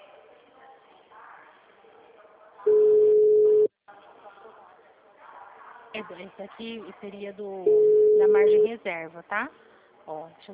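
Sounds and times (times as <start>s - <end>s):
telephone tone while placing a call: 2.7s - 3.7s, 7.7s - 8.7s
speech: 6.0s - 10.5s.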